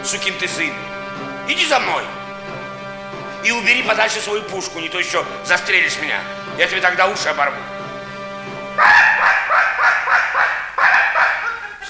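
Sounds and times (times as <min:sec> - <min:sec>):
laughter: 0:00.0 - 0:11.8
speech: 0:00.1 - 0:02.6, 0:03.4 - 0:07.7, 0:08.8 - 0:09.3
hunting dog barking at hunters: 0:08.8 - 0:11.8.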